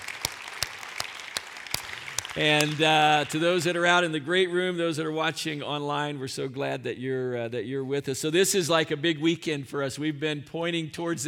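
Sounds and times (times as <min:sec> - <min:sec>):
congregation applauding in a church sanctuary: 0:00.0 - 0:03.8
speech: 0:02.4 - 0:11.2.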